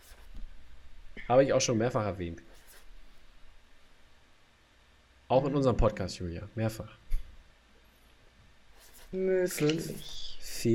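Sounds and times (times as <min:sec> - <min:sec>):
speech: 0:01.3 - 0:02.6, 0:05.3 - 0:07.0, 0:09.1 - 0:10.7
pen scratching across paper writing an answer to a quiz question: 0:08.8 - 0:09.2.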